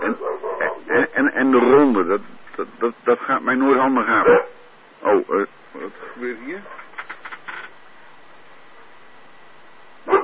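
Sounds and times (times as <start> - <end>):
dog giving a short sharp bark: 0.0 - 1.1, 4.2 - 5.2, 10.0 - 10.2
steady hiss: 0.0 - 10.2
speech: 1.5 - 6.8.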